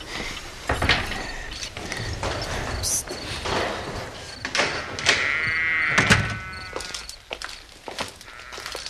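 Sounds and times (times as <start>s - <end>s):
dull knocks and rattles: 0.6s - 6.5s
wooden stable gate creaking open: 0.6s - 8.8s.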